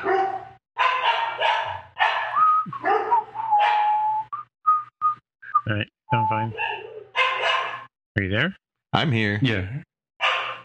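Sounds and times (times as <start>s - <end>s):
dog barking: 0.0s - 3.9s, 6.5s - 7.9s, 10.2s - 10.6s
dog whining yips: 1.0s - 4.3s, 6.5s - 7.9s
speech: 5.7s - 6.7s, 8.2s - 9.9s.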